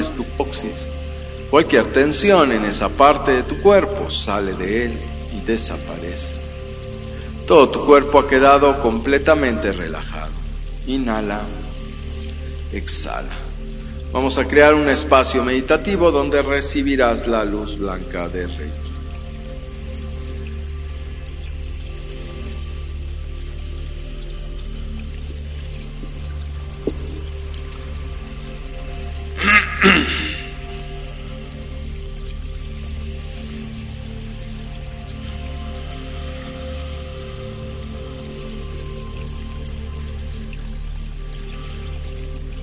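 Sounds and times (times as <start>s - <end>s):
speech: 0.0s - 6.4s, 7.5s - 11.6s, 12.7s - 13.4s, 14.1s - 18.8s
falling rain: 0.0s - 42.6s
spring water flowing: 0.0s - 42.6s
water splash: 25.4s - 28.2s.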